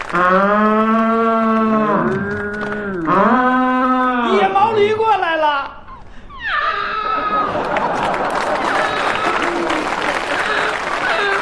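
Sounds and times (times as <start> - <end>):
speech: 0.1 - 0.6
human voice imitating a wild yak lowing: 0.6 - 4.7
laughter: 6.7 - 11.3.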